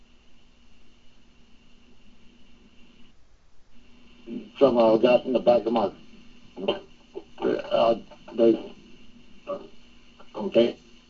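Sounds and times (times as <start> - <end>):
thin band-limited voice over a phone line breaking up: 4.3 - 6.0, 6.6 - 8.8, 9.5 - 10.8
speech: 4.6 - 6.0, 6.6 - 6.9, 7.9 - 8.8, 10.4 - 10.8.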